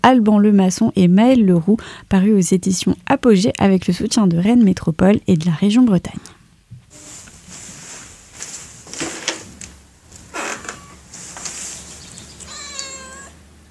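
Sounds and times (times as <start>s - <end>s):
speech: 0.0s - 6.3s
steady low hum: 0.0s - 13.6s
soft scuffling and rustling: 7.0s - 12.2s
cat meowing: 10.4s - 11.1s, 12.1s - 13.4s.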